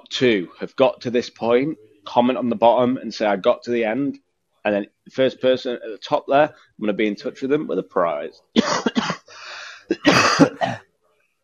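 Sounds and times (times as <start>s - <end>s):
speech: 0.1s - 9.2s
loud harsh raspy cough: 8.6s - 10.8s.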